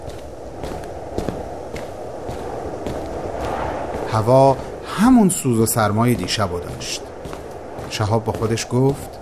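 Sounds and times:
footsteps on a hard surface toward a house door: 0.0 - 9.2
speech: 4.2 - 7.1, 7.9 - 9.2.

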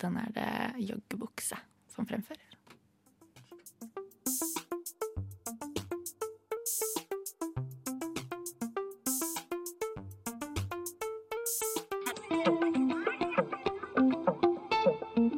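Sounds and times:
speech: 0.0 - 2.6
R&B and hip-hop music track: 3.7 - 15.2.

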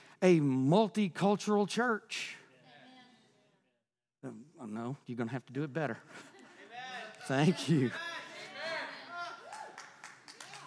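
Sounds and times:
speech: 0.2 - 2.4, 4.2 - 6.3, 7.3 - 8.1
audience clapping in a room: 9.4 - 10.6.

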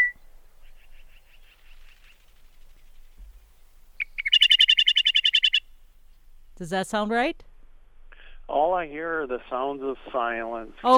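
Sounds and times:
meadowlark song played on air: 0.0 - 6.3
speech: 6.6 - 7.5, 8.6 - 10.9.

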